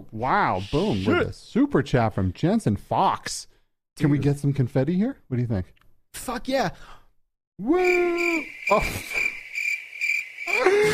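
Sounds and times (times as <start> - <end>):
speech: 0.0 - 7.0, 7.6 - 9.3
crickets chirping in a continuous high trill: 7.6 - 10.9.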